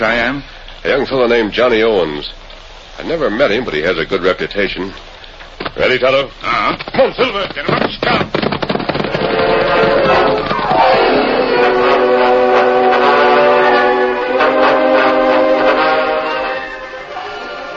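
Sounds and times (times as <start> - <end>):
speech: 0.0 - 2.4, 3.0 - 5.1, 5.7 - 8.3
arriving work train rumbling on the main track: 0.0 - 17.7
work train locomotive whistle wailing on arrival in light drizzle: 9.2 - 17.7.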